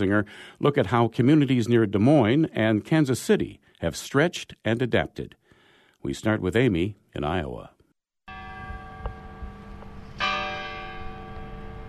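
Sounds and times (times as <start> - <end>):
speech: 0.0 - 5.4, 6.0 - 7.8
large courthouse clock bell in Adel Iowa chiming the hour: 8.3 - 11.8.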